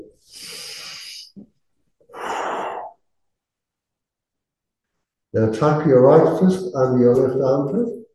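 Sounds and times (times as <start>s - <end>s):
slow inhale through the nose during a breathing exercise: 0.2s - 1.3s, 2.1s - 3.0s
long loud exhale during a breathing exercise: 0.3s - 1.3s, 2.1s - 3.0s
speech: 5.4s - 8.0s.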